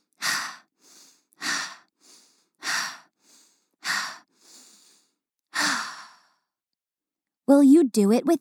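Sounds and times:
slow deep breaths taken as a calming exercise: 0:00.0 - 0:06.6
speech: 0:07.5 - 0:08.3.

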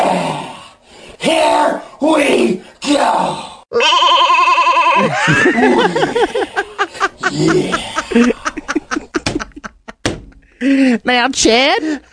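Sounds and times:
speech: 0:01.2 - 0:06.7, 0:07.3 - 0:08.4, 0:10.6 - 0:12.1
goat bleating: 0:03.7 - 0:05.2
laughter: 0:05.0 - 0:10.9.

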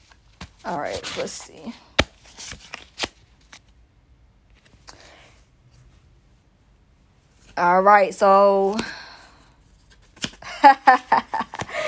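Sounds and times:
cards being shuffled and drawn from a card deck: 0:00.0 - 0:03.7, 0:04.5 - 0:04.9, 0:09.7 - 0:10.4
speech: 0:00.6 - 0:01.9, 0:07.6 - 0:09.0.

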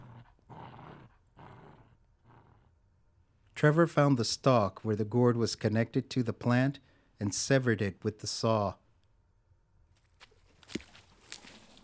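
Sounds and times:
female pit bull growling at gourd remains: 0:00.0 - 0:02.7
speech: 0:03.6 - 0:08.8.

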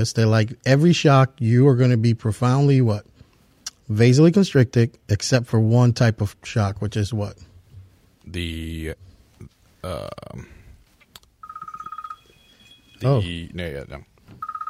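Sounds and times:
speech: 0:00.0 - 0:03.1, 0:03.9 - 0:07.5, 0:08.2 - 0:10.6, 0:13.0 - 0:14.1
gruff vocal bursts: 0:09.8 - 0:10.6
electronic phone ringtone: 0:11.4 - 0:13.4, 0:14.4 - 0:14.6.

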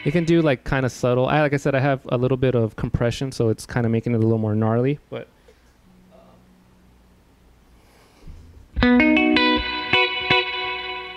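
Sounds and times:
electric guitar through a tube spring reverb tank playing picked notes and chords: 0:00.0 - 0:00.7, 0:08.7 - 0:11.1
speech: 0:00.0 - 0:05.4.

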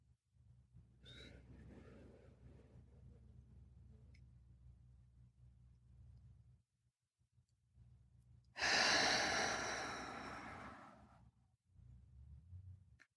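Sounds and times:
deep breathing: 0:08.6 - 0:11.2.

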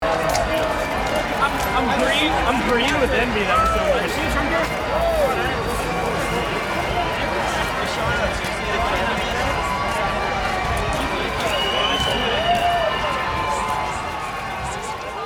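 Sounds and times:
St Patrick's Day celebration crowd noise on a city street: 0:00.0 - 0:15.2
speech: 0:02.6 - 0:04.7.

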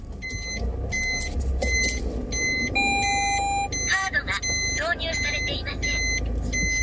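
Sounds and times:
low car engine hum: 0:00.0 - 0:06.8
electronic car parking sensor beeps: 0:00.2 - 0:06.8
car automated voice alert speaking Japanese: 0:03.8 - 0:06.2.

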